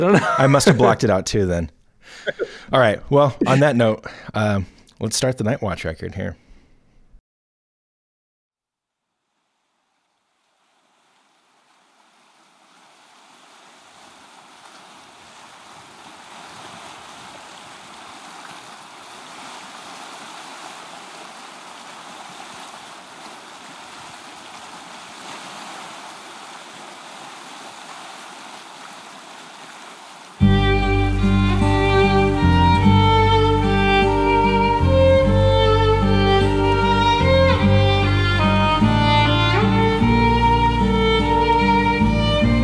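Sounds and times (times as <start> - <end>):
laughter: 0.0 - 1.3, 2.1 - 2.6, 3.2 - 3.8
speech: 0.0 - 6.4
ocean surf breaking: 10.5 - 42.6.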